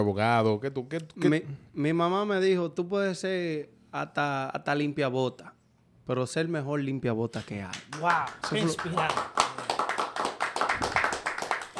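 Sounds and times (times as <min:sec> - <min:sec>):
speech: 0:00.0 - 0:09.6
crowd clapping and applauding: 0:07.8 - 0:11.7.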